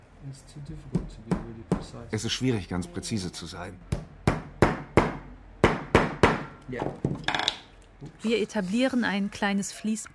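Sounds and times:
speech: 0:00.2 - 0:04.2, 0:06.7 - 0:10.1
hammer tapping nails into hard foam: 0:03.9 - 0:07.6.

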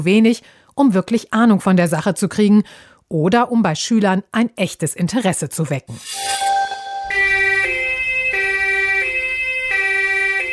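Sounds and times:
speech: 0:00.0 - 0:06.4
two-tone ambulance siren: 0:06.4 - 0:10.5.

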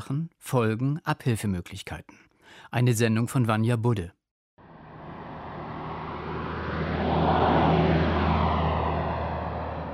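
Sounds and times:
speech: 0:00.0 - 0:04.2
cars passing on a village street in Schönwalde im Spreewald, Germany: 0:04.6 - 0:09.9
steady low traffic hum: 0:04.6 - 0:09.9.

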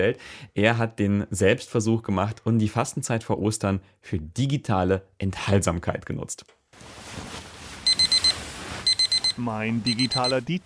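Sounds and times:
speech: 0:00.0 - 0:07.4, 0:09.4 - 0:10.6
smartphone alarm beeping in the morning: 0:07.9 - 0:10.5.

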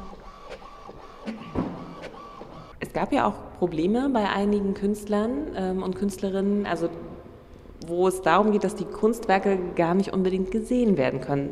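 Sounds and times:
printer at an art exhibition printing a page: 0:00.0 - 0:02.8
speech: 0:03.0 - 0:07.1, 0:07.9 - 0:11.5.

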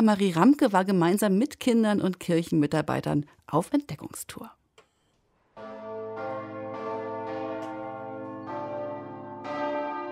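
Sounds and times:
speech: 0:00.0 - 0:04.6
church bells ringing: 0:05.6 - 0:10.1.

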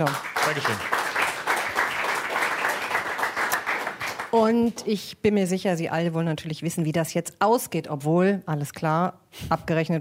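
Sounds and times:
speech: 0:00.0 - 0:01.0, 0:04.3 - 0:10.0
crowd applauding: 0:00.0 - 0:04.4.

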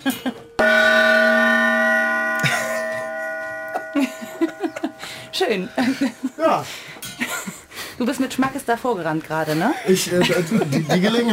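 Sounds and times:
gong struck hard: 0:00.6 - 0:06.7
laughter: 0:02.4 - 0:07.7, 0:09.7 - 0:11.3
speech: 0:05.4 - 0:06.9, 0:08.0 - 0:11.3.

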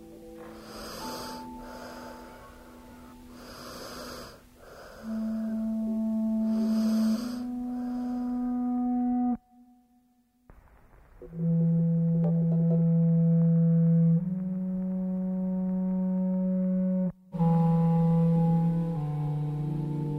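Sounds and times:
steady humming drone: 0:00.0 - 0:09.4, 0:11.9 - 0:20.1
two-year-old child breathing while asleep: 0:00.2 - 0:05.6, 0:06.4 - 0:08.5.

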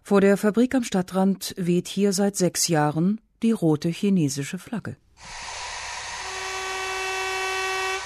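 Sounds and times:
speech: 0:00.1 - 0:05.5
industrial special sewing machine motor whine at a sewing machine factory in Bielefeld Germany: 0:05.2 - 0:08.0.

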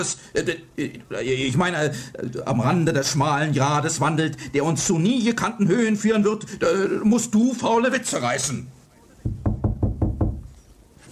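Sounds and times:
speech: 0:00.0 - 0:08.8
knocking: 0:09.2 - 0:10.5.

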